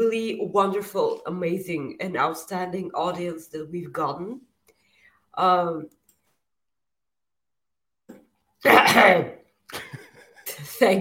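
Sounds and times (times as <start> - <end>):
speech: 0.1 - 4.5, 5.4 - 6.0, 8.6 - 10.0, 10.6 - 11.0
harsh voiced and breathy coughing: 8.6 - 9.9.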